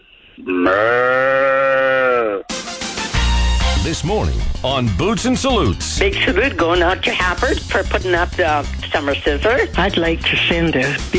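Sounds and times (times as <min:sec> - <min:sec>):
speech: 0:00.4 - 0:01.0, 0:03.9 - 0:11.1
person imitating a cow mooing: 0:00.4 - 0:02.5.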